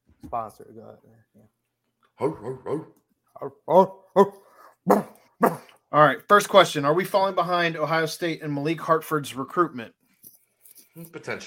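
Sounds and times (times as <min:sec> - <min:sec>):
speech: 0:00.3 - 0:01.6, 0:02.2 - 0:10.0, 0:11.0 - 0:11.4
dog giving whiny barks and whimpers: 0:04.2 - 0:05.8.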